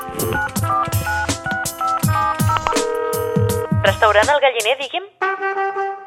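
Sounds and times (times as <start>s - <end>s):
telephone number keyed in with short dialing tones: 0.1s - 1.3s, 2.5s - 4.2s
speech: 0.2s - 1.0s, 4.0s - 5.9s.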